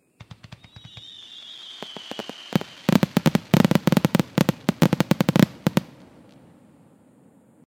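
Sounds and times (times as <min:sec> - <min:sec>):
fireworks firing in rapid bursts: 0:00.2 - 0:06.3.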